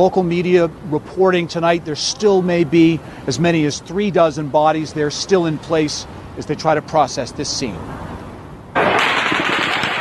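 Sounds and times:
speech: 0.0 - 8.1
rapid automatic gunfire with echo: 8.8 - 9.9.

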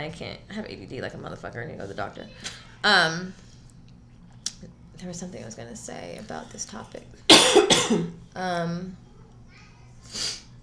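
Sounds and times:
speech: 0.0 - 3.5, 4.6 - 9.0, 10.0 - 10.4
cough-like burst: 7.3 - 8.2
person sniffing: 10.1 - 10.5.

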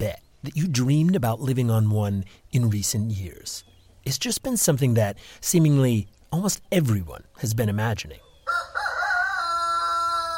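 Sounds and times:
speech: 0.0 - 8.2
rooster crowing: 8.4 - 10.3.

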